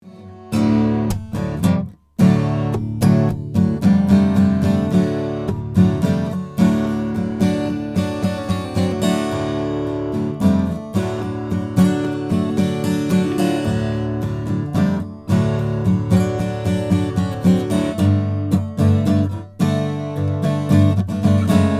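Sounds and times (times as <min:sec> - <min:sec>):
Lowden acoustic guitar: 0:00.0 - 0:21.7.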